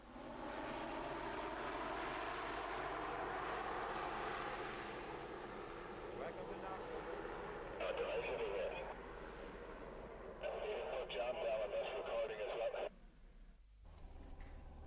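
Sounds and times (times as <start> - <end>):
Shorts 360 commuter plane propeller engines droning while touching down: 0.0 - 14.8
voices: 6.2 - 9.0, 10.4 - 12.9.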